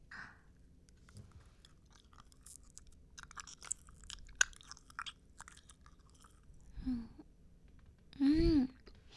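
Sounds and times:
chewing peach-flavoured gum: 0.9 - 6.8.

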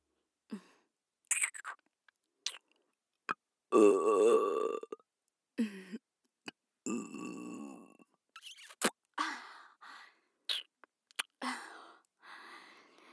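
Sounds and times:
wet mouth clicks and smacks: 1.3 - 1.8, 8.4 - 9.0, 10.5 - 11.3
person burping: 3.7 - 5.0, 6.9 - 8.0.

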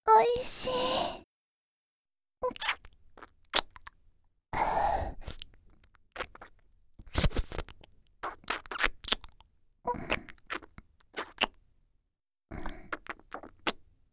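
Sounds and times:
speech: 0.2 - 1.2
breathy sighs: 0.6 - 1.2
wet intimate kissing with tongue: 2.5 - 3.9, 5.2 - 9.4, 10.0 - 11.6, 12.9 - 13.8.

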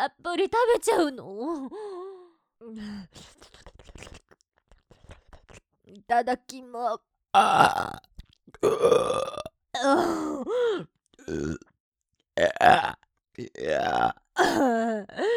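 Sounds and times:
speech: 0.0 - 2.0, 2.6 - 3.6, 5.9 - 11.7, 12.4 - 15.3
loud croaking and gurgling burps: 7.4 - 10.5, 11.2 - 11.7, 12.4 - 15.0.

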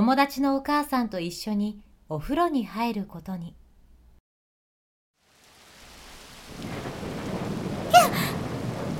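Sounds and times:
speech: 0.0 - 3.6
heavy rain: 5.2 - 8.9
thunder during heavy rain: 6.5 - 8.9.

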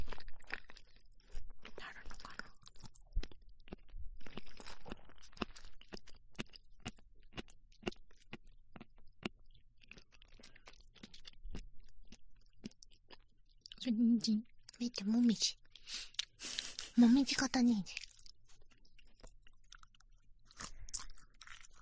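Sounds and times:
person chewing a chewy mushroom: 0.0 - 21.8
speech: 13.9 - 16.0, 17.0 - 18.0.

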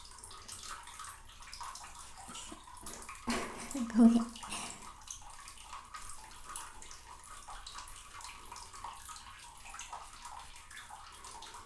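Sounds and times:
water sloshing in a bathtub while someone is washed: 0.0 - 11.6
speech: 3.9 - 4.4.

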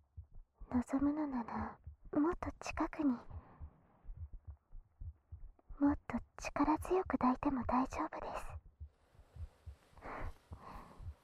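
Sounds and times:
heartbeat: 0.0 - 11.2
speech: 0.7 - 3.4, 5.8 - 8.5
soft breathy whooshes: 9.2 - 11.2.

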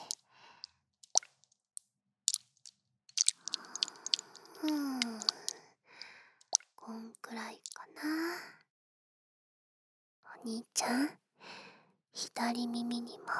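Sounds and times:
cold water putty squishing and being kneaded in a palm: 1.0 - 1.5, 2.3 - 5.6, 7.6 - 7.8
speech: 10.4 - 11.2, 12.2 - 13.3.

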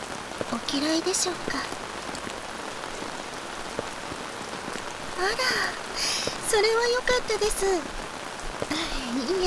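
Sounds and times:
rain pattering on a hard surface: 0.0 - 9.4
speech: 0.7 - 1.8, 5.2 - 8.0, 8.7 - 9.4.

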